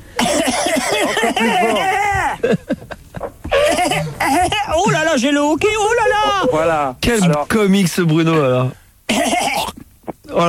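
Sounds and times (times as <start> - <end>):
person coughing loudly and deliberately: 0.2 - 2.4, 3.4 - 5.1, 9.1 - 9.8
laughter: 0.9 - 5.2
speech: 1.0 - 3.0, 4.3 - 9.4.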